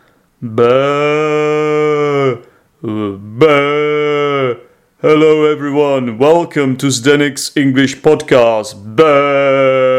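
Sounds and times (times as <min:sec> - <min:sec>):
speech: 0:00.4 - 0:01.0, 0:05.0 - 0:08.9
person imitating sheep bleating: 0:00.4 - 0:04.7, 0:08.8 - 0:09.9.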